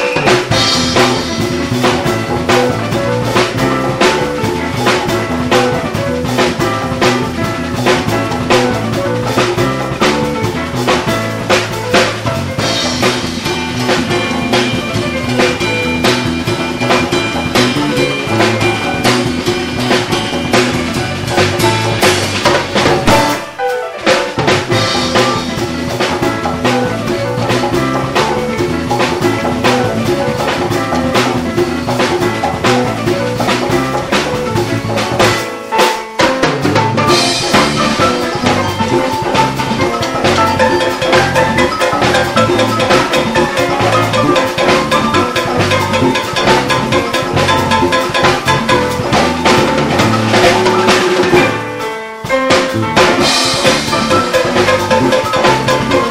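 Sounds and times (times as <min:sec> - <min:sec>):
fingered bass: 0:00.2 - 0:23.5, 0:24.4 - 0:35.6, 0:36.4 - 0:51.8, 0:52.5 - 0:56.0.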